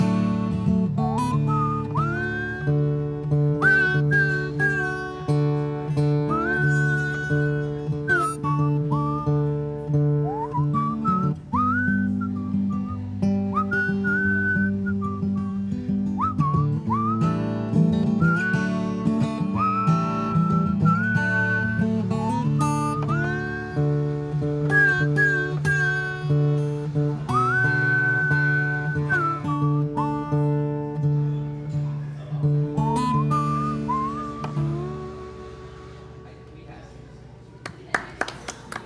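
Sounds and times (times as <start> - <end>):
sustained instrumental backing: 0.0 - 36.4
person whistling a little tune with gliding, bending notes: 1.0 - 2.9, 3.5 - 5.3, 6.3 - 9.5, 10.2 - 23.9, 24.6 - 30.8, 32.8 - 36.0.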